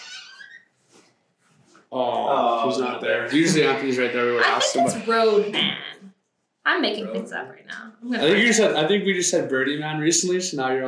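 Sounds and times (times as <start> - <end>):
door creaking open with a high-pitched squeak: 0.0 - 0.7
faint rustling and quiet shuffling: 0.7 - 1.9
speech: 1.9 - 6.1, 6.7 - 10.8
laughter: 2.0 - 5.9, 8.2 - 10.8.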